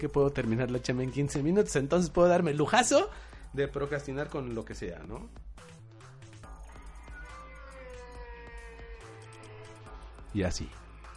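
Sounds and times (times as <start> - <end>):
speech: 0.0 - 5.8, 10.3 - 10.8
cat screeching and yowling: 6.7 - 10.2.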